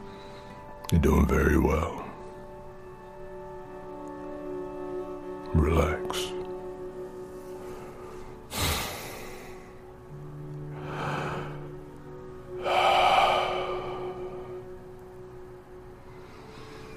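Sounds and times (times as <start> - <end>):
slow deep breaths in through the nose and out through the mouth: 0.0 - 0.8, 7.2 - 16.9
speech: 0.9 - 2.0, 5.5 - 6.3.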